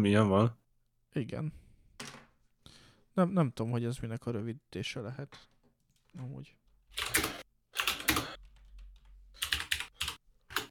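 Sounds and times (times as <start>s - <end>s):
speech: 0.0s - 1.6s, 3.2s - 5.5s, 6.1s - 7.3s
typing on a computer keyboard: 7.0s - 10.6s.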